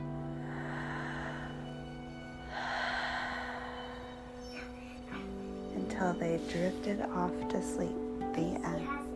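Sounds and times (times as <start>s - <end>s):
voice imitating slow breathing: 0.0s - 5.7s
speech: 6.0s - 9.0s.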